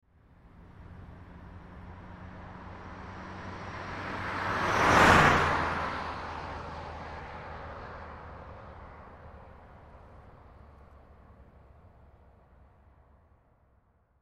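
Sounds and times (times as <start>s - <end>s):
1986 Ford Escort driving by right to left at 55 mph: 0.5s - 11.0s.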